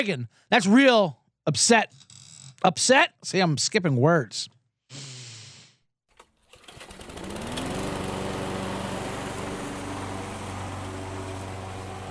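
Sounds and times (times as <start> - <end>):
speech: 0.0 - 5.1
lawn mower engine: 6.2 - 12.0.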